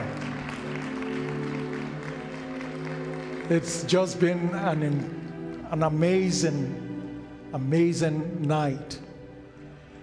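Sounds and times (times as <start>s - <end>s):
large audience applause: 0.0s - 5.7s
speech: 3.5s - 6.8s, 7.5s - 9.0s.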